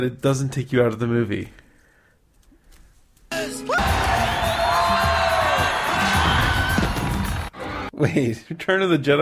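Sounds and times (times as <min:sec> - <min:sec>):
speech: 0:00.0 - 0:01.6, 0:08.0 - 0:09.2
sharp high-pitched scream: 0:03.3 - 0:07.7
lively crowd cheering and whooping in celebration: 0:03.7 - 0:07.9.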